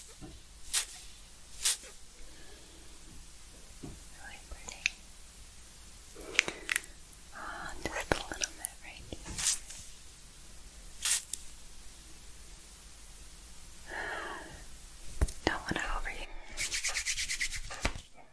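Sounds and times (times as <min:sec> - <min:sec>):
stiff makeup brush rubbing against skin while blending: 0:00.7 - 0:02.0, 0:07.4 - 0:10.0, 0:11.0 - 0:11.4, 0:15.4 - 0:18.1
faint breathy whispering: 0:04.1 - 0:04.9, 0:06.2 - 0:09.3, 0:15.4 - 0:16.6.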